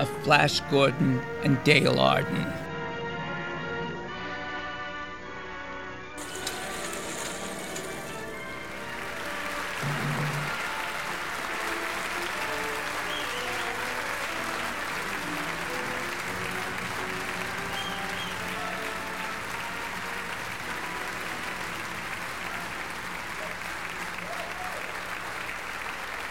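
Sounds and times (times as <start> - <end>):
speech: 0.0 - 2.6
brief musical passage: 0.0 - 26.2
large indoor theatre crowd applauding: 6.2 - 26.2.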